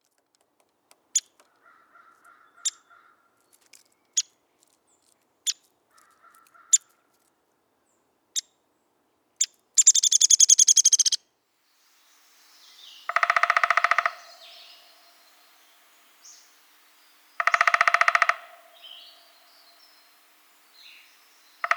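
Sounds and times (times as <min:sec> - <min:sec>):
Downy Woodpecker: 0:00.5 - 0:04.3, 0:09.4 - 0:11.2, 0:12.8 - 0:21.7.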